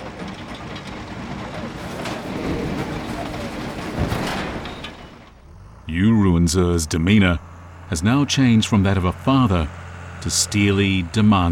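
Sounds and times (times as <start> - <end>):
brief louder clank: 0.0 - 5.4
coal wagons and rail machinery grinding: 0.0 - 11.4
steady industrial rumble of a railway freight yard: 0.0 - 11.4
speech: 6.0 - 11.4.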